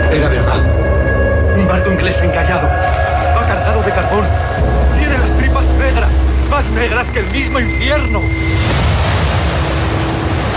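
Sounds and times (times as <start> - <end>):
howling wind in a storm at sea: 0.0 - 10.5
crashing waves in a storm at sea: 2.7 - 10.5
speech: 6.8 - 9.0.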